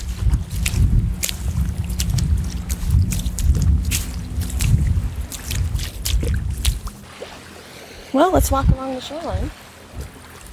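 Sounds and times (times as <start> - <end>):
wind buffeting: 0.0 - 7.4, 8.1 - 10.5
personal watercraft motor droning near the beach: 0.0 - 8.4
splashy crackles: 0.0 - 10.5
speech: 8.2 - 9.6.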